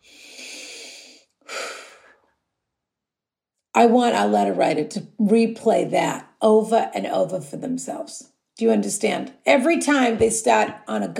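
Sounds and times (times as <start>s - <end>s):
person breathing deeply: 0.0s - 2.3s
speech: 3.8s - 11.1s.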